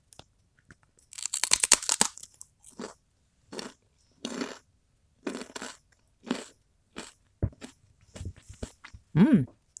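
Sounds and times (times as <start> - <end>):
crunching and chewing kerupuk gendar rice crackers: 1.0 - 8.9
speech: 9.2 - 9.6.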